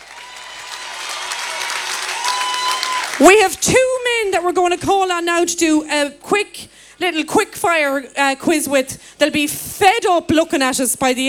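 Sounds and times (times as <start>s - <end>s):
crowd applauding: 0.0s - 3.9s
speech: 3.2s - 11.2s.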